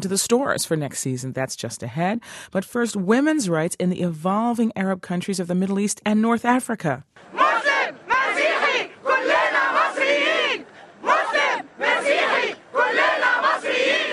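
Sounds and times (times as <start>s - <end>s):
speech: 0.0s - 7.4s
crowd shouting rhythmic phrases at pro-democracy demonstrations: 7.2s - 14.1s
women protesters chanting at pro-democracy demonstrations: 7.2s - 14.1s.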